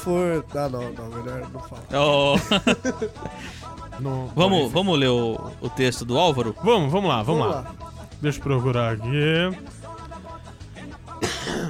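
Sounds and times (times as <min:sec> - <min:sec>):
speech: 0:00.0 - 0:09.8
laughter: 0:02.0 - 0:03.6
harsh cough into the microphone: 0:11.2 - 0:11.6.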